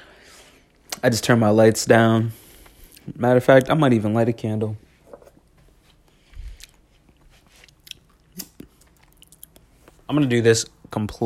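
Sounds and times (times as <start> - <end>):
speech: 1.0 - 2.4, 3.1 - 4.9, 10.1 - 11.2
person chewing food with wet crunchy bites: 6.0 - 10.1.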